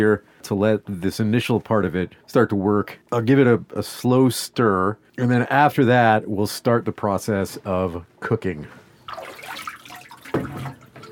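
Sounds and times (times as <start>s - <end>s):
speech: 0.0s - 9.3s
water bath sloshing as a pot of milk is lifted out during cheesemaking: 9.0s - 11.0s
sharper water splash: 9.1s - 10.9s.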